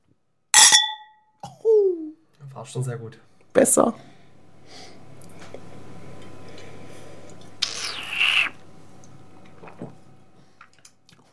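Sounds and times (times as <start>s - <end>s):
wine glasses clinking in a toast: 0.6s - 1.1s
speech: 2.6s - 5.0s.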